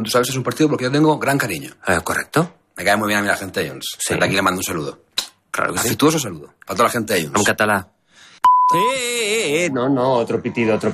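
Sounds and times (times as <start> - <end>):
speech: 0.0 - 8.0, 8.7 - 10.9
censor bleep: 8.4 - 9.0.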